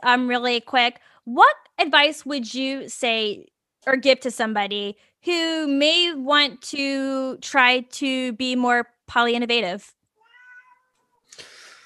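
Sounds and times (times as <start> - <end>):
speech: 0.0 - 10.0
cat meowing: 10.2 - 11.3.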